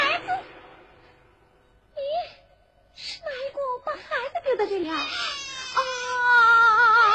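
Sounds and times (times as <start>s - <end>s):
infant crying: 4.9s - 7.1s.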